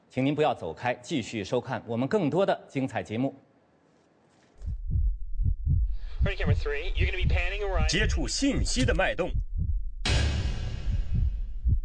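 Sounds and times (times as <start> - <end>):
speech: 0.2 - 3.5, 6.2 - 9.4
heartbeat sound effect with deep thumps: 4.6 - 11.8.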